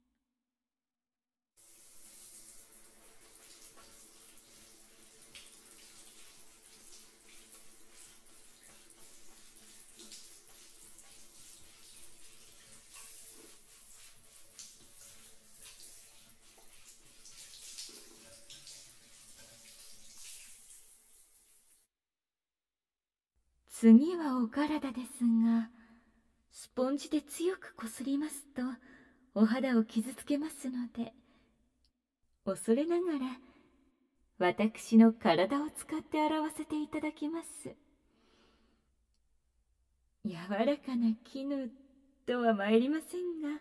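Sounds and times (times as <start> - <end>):
running water from a shower spray rinsing off soap foam: 1.6 - 21.9
speech: 23.8 - 25.8, 26.7 - 31.2, 32.4 - 33.5, 34.4 - 37.8, 40.2 - 43.5.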